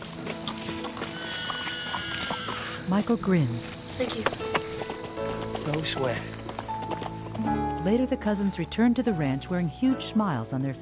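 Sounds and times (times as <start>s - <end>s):
horse galloping away from a ranch: 0.0s - 9.8s
speech: 2.9s - 4.7s, 5.7s - 6.4s, 7.4s - 10.7s.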